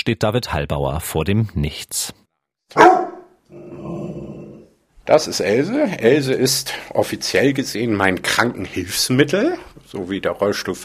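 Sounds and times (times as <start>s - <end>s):
speech: 0.0s - 3.0s, 5.1s - 10.8s
dog barking: 2.7s - 3.4s
dog growling: 3.5s - 4.8s.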